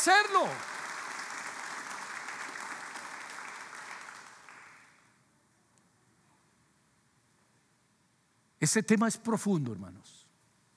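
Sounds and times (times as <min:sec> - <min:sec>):
speech: 0:00.0 - 0:00.7, 0:08.6 - 0:10.2
church audience clapping: 0:00.0 - 0:05.2.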